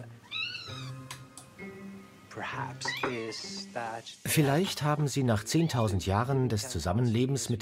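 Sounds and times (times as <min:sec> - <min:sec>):
domestic cat making lower murmuring vocal sounds: 0:00.2 - 0:01.0
domestic cat giving a clear rising meow: 0:00.2 - 0:01.1, 0:02.8 - 0:03.5
speech: 0:02.4 - 0:07.6.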